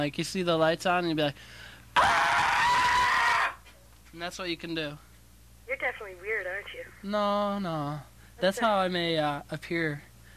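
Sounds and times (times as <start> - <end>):
speech: 0.0 - 2.4, 4.1 - 5.1, 5.7 - 10.1
person screaming: 2.0 - 3.6.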